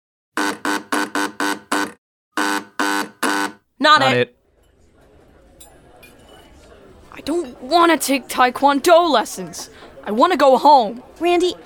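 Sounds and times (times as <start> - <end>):
harsh electric buzzer buzzing: 0.4 - 4.2
speech: 3.8 - 4.4, 7.2 - 11.6.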